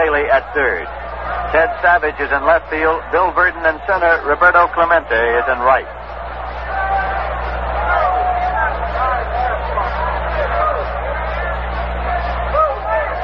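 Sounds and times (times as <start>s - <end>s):
speech: 0.0s - 6.0s
large stadium crowd cheering a strike: 0.0s - 13.2s.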